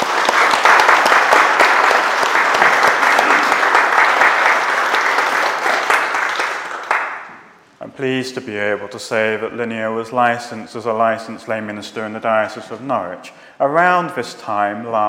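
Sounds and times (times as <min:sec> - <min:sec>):
room full of people applauding: 0:00.0 - 0:07.3
speech: 0:08.0 - 0:15.0.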